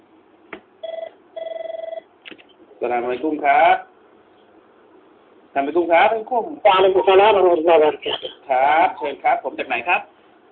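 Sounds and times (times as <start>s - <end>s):
telephone ringing with trilling electronic rings: 0.8s - 2.1s
speech: 2.8s - 3.9s, 5.6s - 10.1s.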